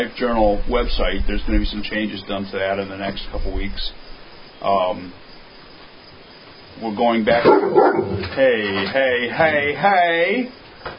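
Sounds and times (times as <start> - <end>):
speech: 0.0 - 5.2, 6.8 - 10.9
big brown dog barking at another dog: 7.4 - 8.2.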